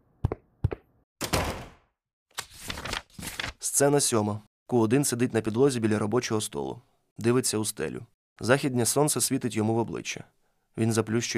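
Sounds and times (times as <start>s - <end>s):
entrance door slamming shut: 1.2s - 1.9s
speech: 3.7s - 11.3s.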